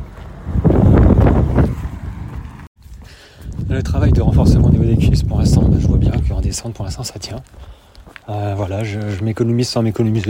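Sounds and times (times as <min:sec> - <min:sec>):
wind buffeting the microphone outdoors: 0:00.4 - 0:07.9
speech: 0:03.8 - 0:10.2.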